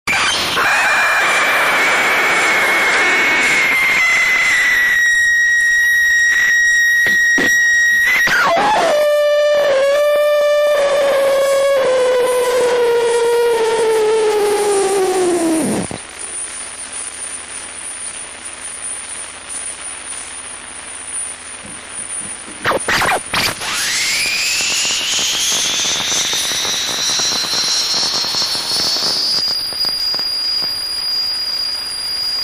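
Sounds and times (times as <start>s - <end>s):
jammer noise: 0.1s - 16.4s, 21.6s - 32.2s.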